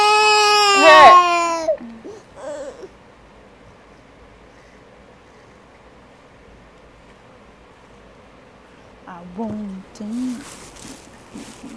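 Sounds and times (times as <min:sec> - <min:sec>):
one-year-old toddler whining and crying: 0:00.0 - 0:02.9.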